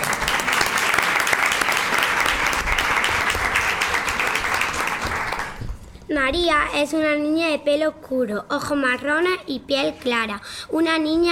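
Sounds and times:
audience applauding at a short story contest awards ceremony: 0:00.0 - 0:05.7
speech: 0:06.2 - 0:11.2.

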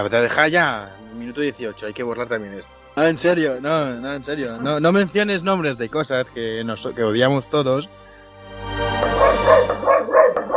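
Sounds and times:
speech: 0:00.0 - 0:08.0
female dog barking in sharp high yips: 0:09.0 - 0:10.5.

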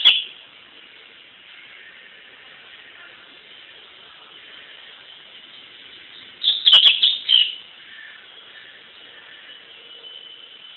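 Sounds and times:
Double-collared seedeater song with chattering notes and clicks: 0:00.0 - 0:00.3, 0:05.6 - 0:09.7
constant low hiss: 0:00.0 - 0:10.7.

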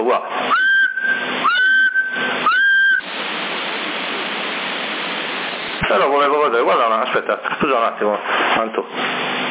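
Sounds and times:
speech: 0:00.1 - 0:00.6, 0:06.7 - 0:09.4
whistle carried over a CB radio channel at 27075 kHz: 0:00.5 - 0:03.1
CB radio hiss: 0:02.3 - 0:09.2.

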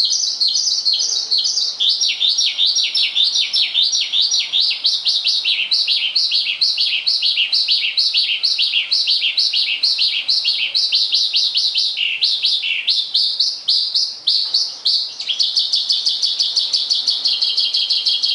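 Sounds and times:
Javan bush lark singing rapid chirps: 0:00.0 - 0:18.3.

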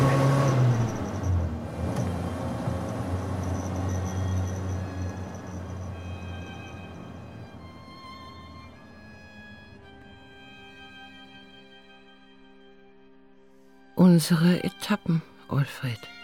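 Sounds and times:
car driving with steady low engine rumble and road noise: 0:00.0 - 0:10.6
speech: 0:14.0 - 0:16.2.

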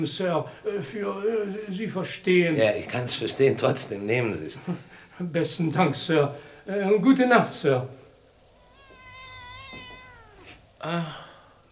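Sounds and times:
speech: 0:00.0 - 0:08.0, 0:10.8 - 0:11.2
young cat meowing: 0:08.5 - 0:10.7.

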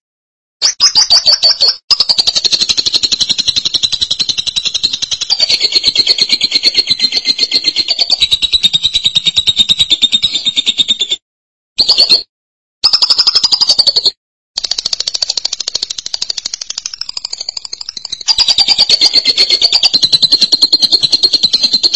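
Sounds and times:
lovebird calling in fast shrill pulsed chattering: 0:00.6 - 0:11.1, 0:12.8 - 0:14.0, 0:18.0 - 0:21.8.

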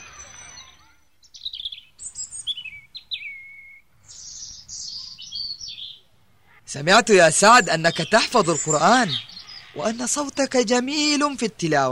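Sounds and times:
caged small songbirds chirping: 0:00.0 - 0:11.9
speech: 0:06.7 - 0:11.9.

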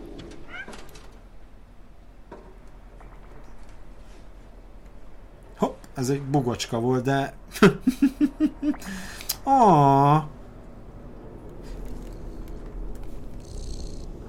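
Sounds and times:
faint steady low hum: 0:00.0 - 0:14.2
speech: 0:06.0 - 0:10.3
laughter: 0:07.5 - 0:09.0
cat purring in a video game from a game controller speaker: 0:11.6 - 0:14.2
game controller vibrating: 0:11.7 - 0:14.2.

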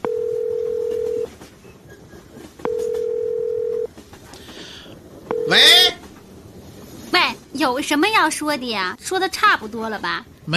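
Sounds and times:
telephone ringing tone on a call to a mobile number: 0:00.0 - 0:01.3, 0:02.6 - 0:03.9, 0:05.3 - 0:06.0
faint noise: 0:00.0 - 0:10.5
speech: 0:05.5 - 0:05.7, 0:07.7 - 0:10.5.

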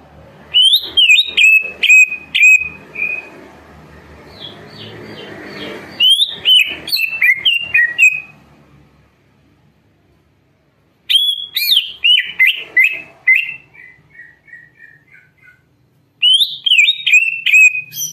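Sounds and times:
greater green leafbird whistled song: 0:00.5 - 0:03.4, 0:05.9 - 0:08.4, 0:11.1 - 0:18.1.

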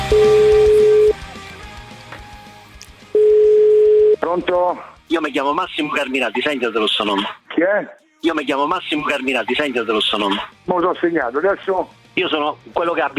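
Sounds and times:
telephone line tone while placing a call: 0:00.1 - 0:01.2, 0:03.2 - 0:04.2
speech: 0:04.5 - 0:13.1.

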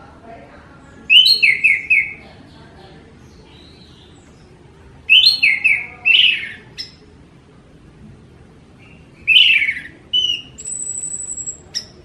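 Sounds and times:
orange-headed thrush singing bright falling whistles: 0:05.1 - 0:07.0, 0:08.8 - 0:12.0.

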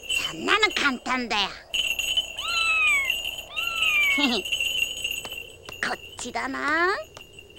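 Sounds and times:
speech: 0:00.3 - 0:01.7, 0:04.2 - 0:04.6, 0:05.9 - 0:07.1
wavering squeak: 0:01.9 - 0:04.6
cartoon cat meowing: 0:02.4 - 0:04.5.

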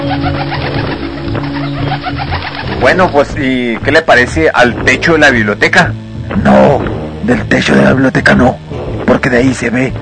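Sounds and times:
pigeons cooing in a bell tower: 0:00.0 - 0:03.4
speech: 0:02.8 - 0:08.6, 0:09.2 - 0:10.0.

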